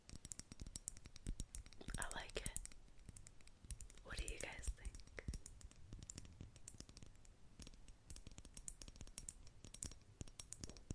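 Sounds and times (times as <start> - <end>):
fingertips tapping on an old passport, handmade calendar, Rubik's cube and hot water bottle: 0.0 - 10.9.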